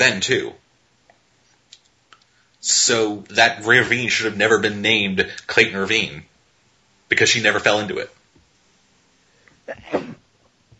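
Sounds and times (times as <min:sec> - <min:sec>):
speech: 0:00.0 - 0:00.6, 0:02.6 - 0:06.3, 0:07.1 - 0:08.2, 0:09.7 - 0:10.1
person sneezing: 0:09.7 - 0:10.3.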